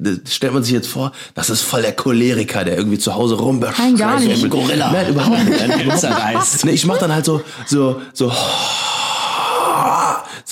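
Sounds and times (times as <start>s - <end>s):
speech: 0.0s - 9.0s
laughter: 4.0s - 8.3s
person imitating heavy stressed breathing: 7.4s - 10.4s.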